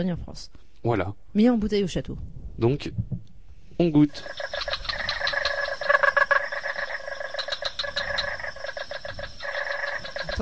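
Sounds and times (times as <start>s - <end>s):
speech: 0.0s - 3.2s, 3.8s - 4.8s
chorus of frogs from the Luberon clicking and croaking: 4.0s - 10.3s.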